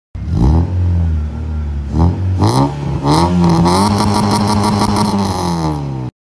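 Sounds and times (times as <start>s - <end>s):
B520 engine exhaust: 0.2s - 6.1s.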